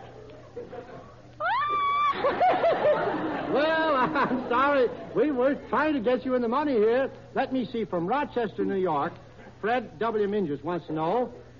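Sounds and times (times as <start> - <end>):
faint room noise: 0.0 - 11.5
person imitating an eagle's scream: 1.4 - 2.3
person laughing: 1.8 - 4.6
speech: 3.5 - 11.4.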